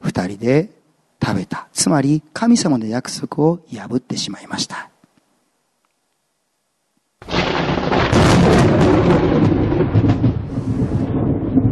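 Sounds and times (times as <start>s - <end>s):
speech: 0.2s - 4.9s
loud rumble of thunder: 7.2s - 11.7s.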